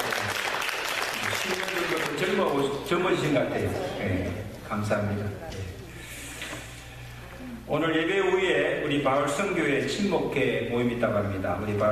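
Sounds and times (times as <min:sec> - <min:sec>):
applause during a church service: 0:00.0 - 0:02.9
speech: 0:02.2 - 0:05.8, 0:07.7 - 0:11.8.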